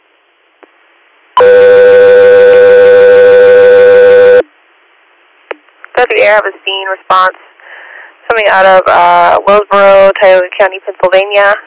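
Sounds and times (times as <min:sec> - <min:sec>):
radio dispatch alert tones: 0:01.4 - 0:04.4
speech: 0:06.2 - 0:07.5, 0:08.4 - 0:11.6.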